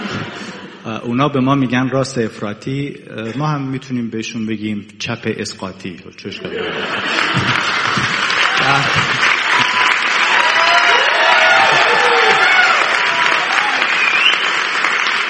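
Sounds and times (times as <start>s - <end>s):
laughter: 0.0s - 1.1s, 6.3s - 10.0s
speech: 0.9s - 7.6s, 8.7s - 9.2s
large audience clapping: 7.0s - 15.2s
scattered cheers: 7.6s - 15.2s
people shouting: 8.4s - 13.9s.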